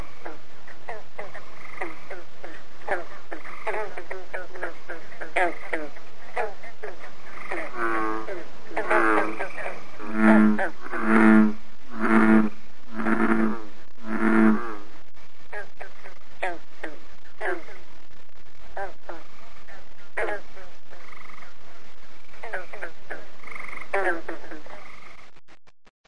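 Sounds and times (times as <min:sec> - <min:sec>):
pond ambience: 0:00.0 - 0:25.3.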